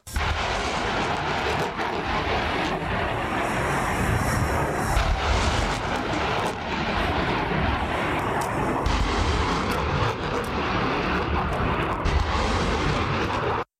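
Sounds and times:
HIMARS rocket launcher firing rockets: 0.0 - 13.7.

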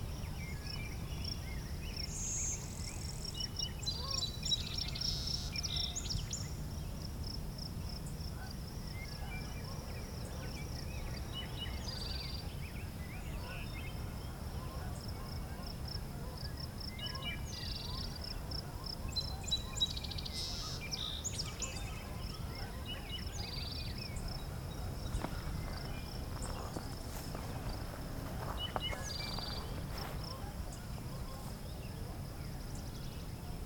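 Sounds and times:
distant wood thrush singing: 0.0 - 7.0, 7.9 - 33.6
steady high insect hum: 0.0 - 33.6
low outdoor rumble: 23.2 - 33.6.

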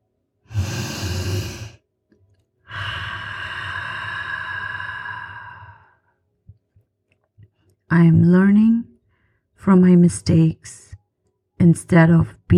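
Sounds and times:
slow deep breathing during a mantra meditation: 0.5 - 1.8, 2.6 - 6.2
speech: 7.9 - 8.9, 9.6 - 10.9, 11.6 - 12.5.

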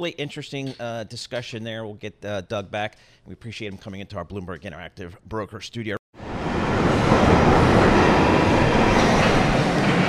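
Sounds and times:
speech: 0.0 - 6.0
London Underground train roaring inside the carriage: 6.2 - 10.0
faint rattling and rail noise of an underground train: 6.2 - 10.0.

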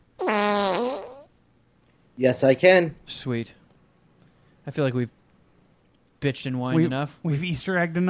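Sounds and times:
fart: 0.2 - 1.4
speech: 2.2 - 3.6, 4.7 - 5.2, 6.2 - 8.0.

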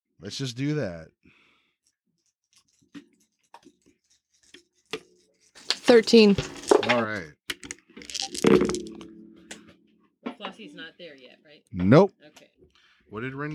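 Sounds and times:
speech: 0.2 - 1.4, 5.9 - 7.4, 8.4 - 8.9, 10.6 - 12.5, 13.1 - 13.5
dice rolled for initiative tumbling across a hard surface: 5.6 - 7.2, 8.0 - 9.0.

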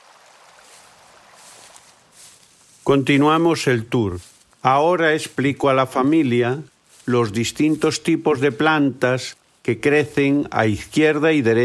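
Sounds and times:
small river flowing beside a walking path: 0.0 - 2.8
speech: 2.9 - 11.6.

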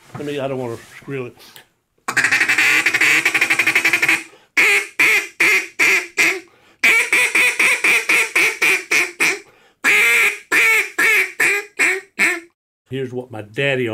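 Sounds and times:
speech: 0.2 - 1.7, 13.1 - 13.9
duck call blown as a duck's mating call: 2.1 - 12.5.

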